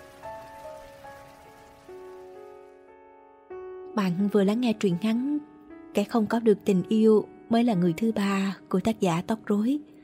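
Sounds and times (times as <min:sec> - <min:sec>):
light rain pattering: 0:00.0 - 0:02.8
speech: 0:04.0 - 0:05.3, 0:06.0 - 0:09.9.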